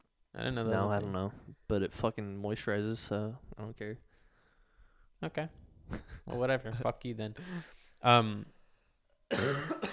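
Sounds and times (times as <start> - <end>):
speech: 0.4 - 4.1, 5.2 - 8.6, 9.3 - 9.9
person coughing: 9.3 - 9.9.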